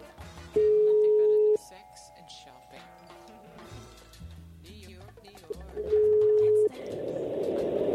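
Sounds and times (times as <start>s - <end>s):
telephone ringback tone from an outgoing phone call: 0.6s - 1.7s, 5.8s - 6.7s.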